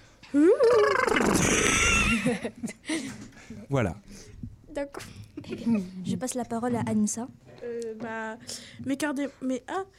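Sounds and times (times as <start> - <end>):
speech: 0.3 - 1.6, 2.2 - 9.9
person imitating a horse's neigh on the radio: 0.3 - 2.2.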